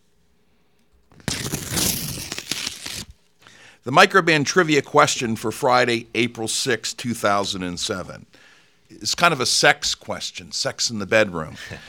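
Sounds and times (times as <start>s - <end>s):
paper envelope crinkling and tearing as it is opened: 1.1s - 3.2s
speech: 3.8s - 11.8s.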